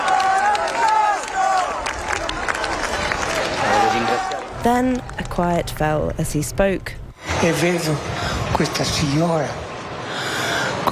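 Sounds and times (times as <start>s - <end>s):
large crowd cheering and shouting outdoors: 0.0s - 4.7s
speech: 4.6s - 9.6s.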